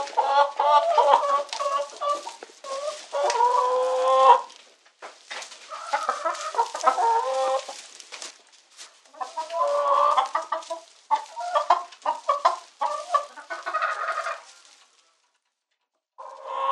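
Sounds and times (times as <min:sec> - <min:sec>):
chicken distress squawks and cackles: 0:00.0 - 0:04.5, 0:05.6 - 0:07.8, 0:09.2 - 0:15.2.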